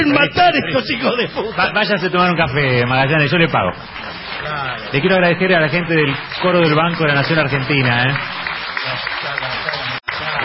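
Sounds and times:
speech: 0.0s - 9.1s
audience applauding at a political speech: 3.3s - 10.4s.

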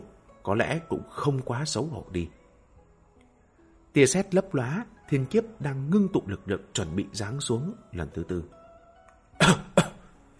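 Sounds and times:
speech: 0.4s - 2.4s, 3.9s - 8.6s
old man coughing dryly: 9.4s - 10.1s.

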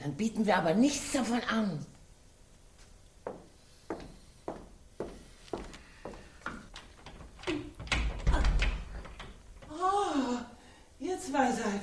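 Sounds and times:
speech: 0.0s - 2.0s, 11.2s - 11.8s
worn-out door opening with a rattle: 6.5s - 9.8s.

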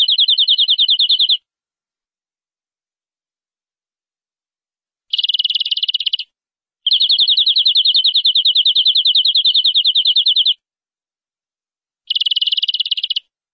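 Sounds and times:
canary singing rattling trills: 0.0s - 1.4s, 5.1s - 6.3s, 6.9s - 10.6s, 12.1s - 13.2s.

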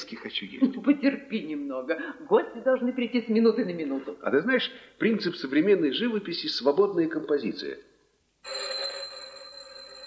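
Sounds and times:
speech: 0.1s - 8.6s
telephone ringing with a metallic tone: 8.4s - 10.0s.

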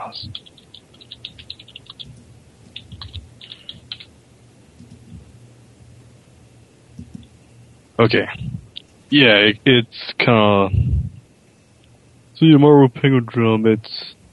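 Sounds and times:
low hum: 0.0s - 14.3s
speech: 0.1s - 0.6s, 8.0s - 8.5s, 9.1s - 10.9s, 12.4s - 14.1s
computer keyboard typing: 0.2s - 4.1s, 4.8s - 5.2s, 7.0s - 7.3s.

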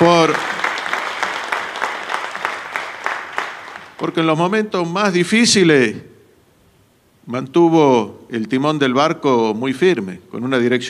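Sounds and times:
audience applause during an official speech: 0.0s - 4.1s
speech: 4.0s - 6.1s, 7.2s - 10.8s.

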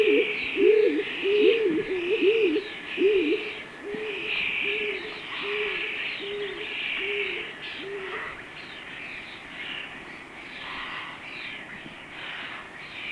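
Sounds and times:
stock dove muffled low cooing in Sweden: 0.0s - 8.4s
other birds calling higher up in Sweden: 0.0s - 8.9s.

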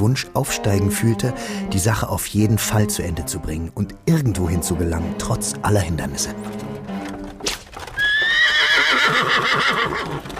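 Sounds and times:
speech: 0.0s - 6.7s
clip-clop of trotting hooves: 6.4s - 10.3s
mare pulling a wagon whinnying: 7.9s - 10.3s.

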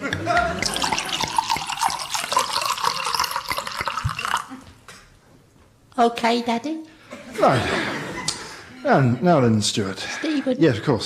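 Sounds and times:
laughter: 0.0s - 1.5s, 7.1s - 9.6s
liquid pouring into a glass: 0.0s - 4.6s
speech: 6.0s - 7.9s, 8.8s - 11.0s.

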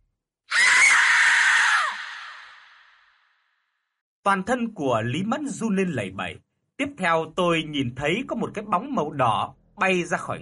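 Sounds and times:
scream of pain from a demon struck by a thrown talisman: 0.5s - 3.1s
speech: 4.2s - 10.4s.

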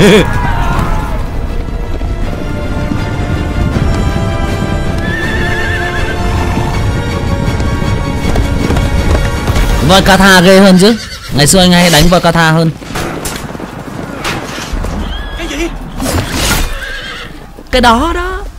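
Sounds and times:
speech: 0.0s - 0.4s, 9.9s - 13.1s, 17.7s - 18.3s
horses galloping in a battle charge: 0.0s - 15.9s
horse whinnying: 4.9s - 6.7s, 10.4s - 11.7s, 14.9s - 17.6s.

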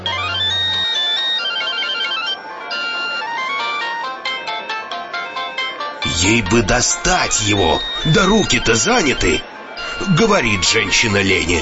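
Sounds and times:
mobile phone ringing inside a woman's bag: 0.0s - 11.6s
speech: 6.1s - 11.6s.

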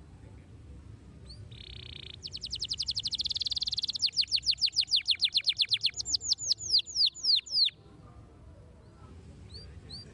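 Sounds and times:
Belgian canary song: 1.2s - 7.8s, 8.8s - 10.1s.

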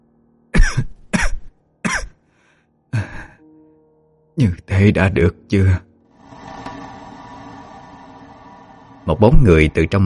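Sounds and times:
woman clutching her chest coughing: 0.6s - 2.2s
speech: 4.4s - 5.9s, 9.1s - 10.0s.

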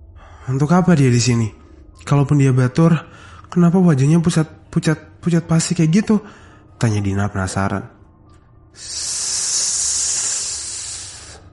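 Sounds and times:
speech: 0.4s - 8.0s, 8.7s - 9.2s
huge snake hissing: 8.8s - 11.5s.

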